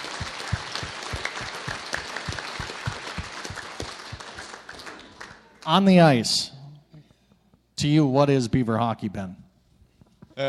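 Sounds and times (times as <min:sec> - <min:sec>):
audience applause: 0:00.0 - 0:05.5
speech: 0:05.6 - 0:06.5, 0:07.8 - 0:09.4.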